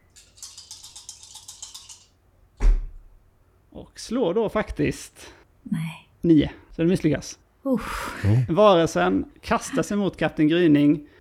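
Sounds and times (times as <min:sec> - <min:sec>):
dice rattling: 0:00.2 - 0:02.2
speech: 0:03.8 - 0:11.1.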